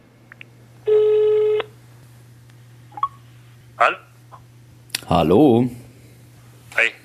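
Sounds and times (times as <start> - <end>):
low electrical hum: 0.0 - 7.0
telephone line tone: 0.8 - 1.7
speech: 3.8 - 4.1, 5.1 - 5.8.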